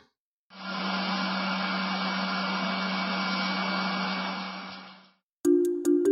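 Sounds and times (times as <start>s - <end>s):
centrifuge spinning and winding down: 0.5s - 5.2s.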